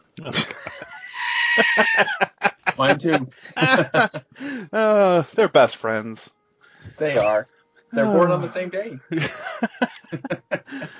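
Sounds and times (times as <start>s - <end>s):
speech: 0.2s - 0.5s, 1.6s - 6.4s, 7.0s - 10.9s
laughter: 0.2s - 5.0s, 9.1s - 10.9s
screaming goat toy bleat rising into a scream: 0.8s - 2.2s.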